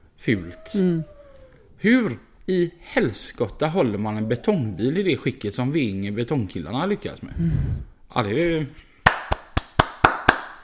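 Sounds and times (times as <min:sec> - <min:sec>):
speech: 0:00.2 - 0:01.2, 0:01.8 - 0:08.9
sharp hand claps: 0:09.0 - 0:10.6.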